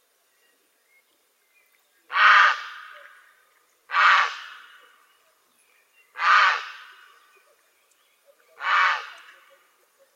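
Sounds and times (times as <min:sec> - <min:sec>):
grey heron giving raspy croaks: 0:02.1 - 0:03.2, 0:03.9 - 0:04.9, 0:06.2 - 0:07.2, 0:08.5 - 0:09.6.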